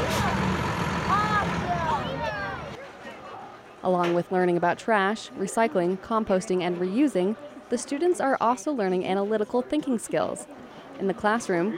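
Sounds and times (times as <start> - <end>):
large truck engine drone: 0.0 - 2.8
speech: 3.8 - 11.7.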